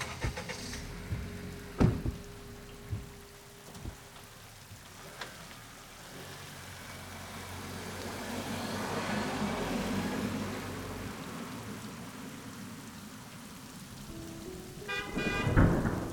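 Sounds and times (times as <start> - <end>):
heavy monsoon rain: 0.0 - 16.1
tonal horn-like vehicle sound: 14.8 - 15.9.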